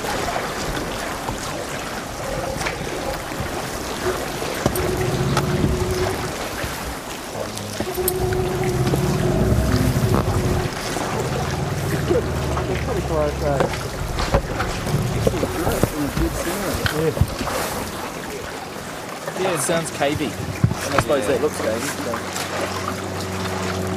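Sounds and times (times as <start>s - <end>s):
water streaming and splashing off an iceberg: 0.0s - 23.9s
low droning hum: 4.6s - 6.8s, 7.4s - 16.0s.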